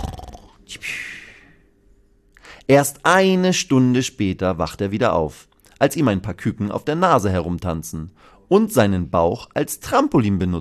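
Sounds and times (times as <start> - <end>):
sleeping dinosaur snoring lightly: 0.0 - 0.5
speech: 2.7 - 10.6.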